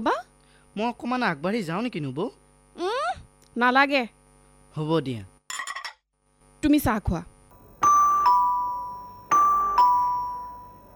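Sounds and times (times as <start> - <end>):
speech: 0.8 - 2.9, 3.6 - 5.3, 6.6 - 7.3
two-tone ding-dong doorbell chime: 7.5 - 10.9.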